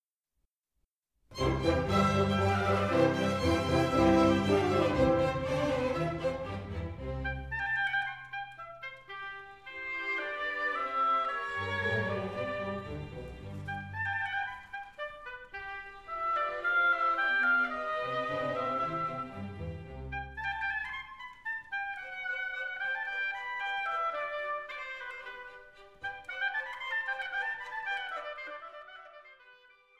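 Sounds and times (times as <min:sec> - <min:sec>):
oboe: 0:01.4 - 0:29.9.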